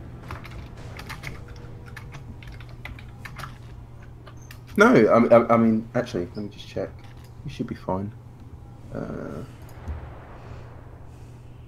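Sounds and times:
steady low electrical hum: 0.0 - 11.6
heavy typing on a computer keyboard: 0.3 - 3.7
speech: 4.8 - 8.2, 8.9 - 9.6.

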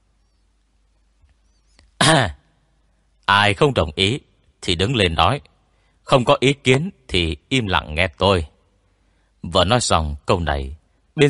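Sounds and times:
dry cough or throat clearing: 2.0 - 2.4
speech: 2.1 - 2.4, 3.3 - 5.5, 6.1 - 8.5, 9.4 - 11.2.

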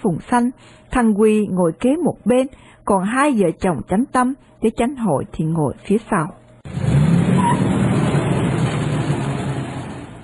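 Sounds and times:
speech: 0.0 - 6.9
car engine rumble driving off along a street: 6.6 - 10.2
car road noise: 6.6 - 10.2.

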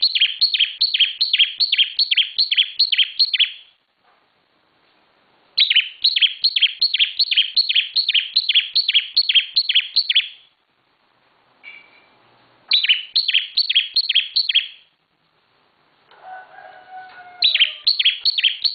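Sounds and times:
bar-winged prinia song: 0.0 - 3.8, 5.6 - 10.6, 11.6 - 15.0, 17.0 - 18.7.

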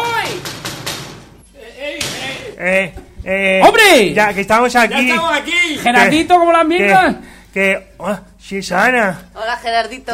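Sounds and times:
loud dull knocks on a door: 0.0 - 1.3
speech: 2.6 - 10.1.

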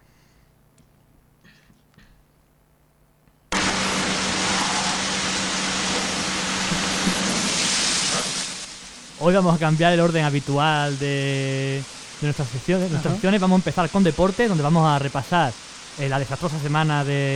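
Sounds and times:
automatic car wash tunnel spraying and scrubbing a dirty car: 3.5 - 17.3
speech: 9.2 - 17.3.

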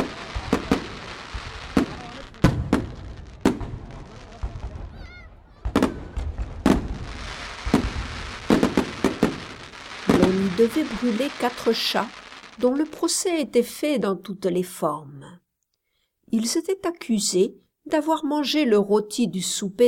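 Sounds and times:
fireworks over a large river cracking and booming: 0.0 - 13.0
speech: 10.6 - 15.2, 16.3 - 19.8.

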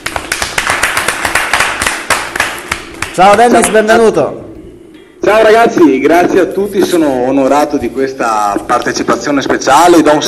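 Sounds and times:
applause welcoming a guest at a dinner-in-the-dark event: 0.0 - 3.2
speech: 3.2 - 4.5, 5.2 - 10.2.

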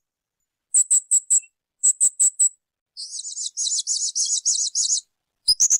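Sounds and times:
spiderhunter shrill rapid note bursts: 0.7 - 5.0
spiderhunter buzzy rasping series: 0.7 - 5.7.

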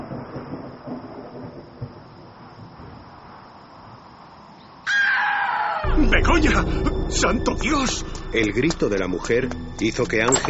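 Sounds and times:
distant thunder rumbling ahead of a coming storm: 0.0 - 3.4, 5.8 - 10.4
crow cawing: 4.9 - 6.0
speech: 6.1 - 10.4.

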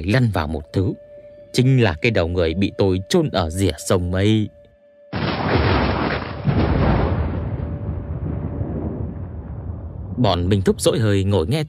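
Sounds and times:
speech: 0.0 - 4.6, 10.2 - 11.6
thunder booming outside an abandoned ancient fortress during a storm: 5.2 - 10.4.

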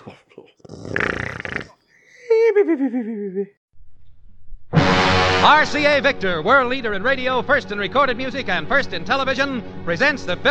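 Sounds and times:
sleeping man snoring: 0.5 - 2.0
laughter: 2.1 - 3.6
speech: 2.8 - 3.6, 5.4 - 10.4.

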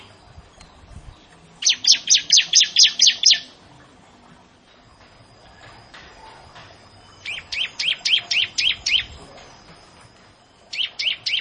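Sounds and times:
Bar-winged prinia song: 0.0 - 3.6, 7.0 - 9.2, 10.7 - 11.3.

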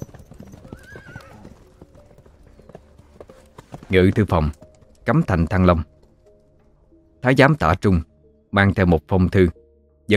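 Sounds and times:
horse whinnying: 0.0 - 1.7
horse hooves clip-clopping: 0.0 - 6.4
speech: 3.9 - 5.9, 7.2 - 10.1.

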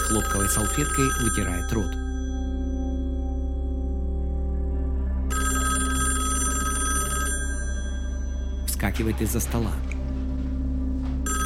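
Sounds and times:
wall-mounted telephone electric bell ringing: 0.0 - 3.1, 5.3 - 8.7, 11.2 - 11.4
steady low tone: 0.0 - 11.4
speech: 0.1 - 2.1, 8.8 - 9.9.

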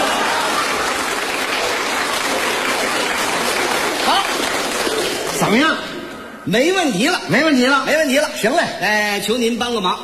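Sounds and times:
audience including children applauding at a live show: 0.0 - 5.7
speech: 5.4 - 10.0.

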